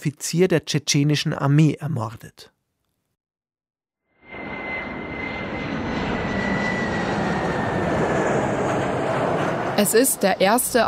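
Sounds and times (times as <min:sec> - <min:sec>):
speech: 0:00.0 - 0:02.5, 0:09.8 - 0:10.8
airplane landing with engine roar: 0:04.2 - 0:10.8.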